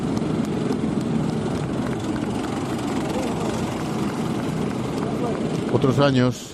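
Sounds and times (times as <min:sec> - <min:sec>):
fighter jets roaring overhead: 0:00.3 - 0:06.5
faint crowd murmur: 0:02.0 - 0:06.5
speech: 0:05.8 - 0:06.5.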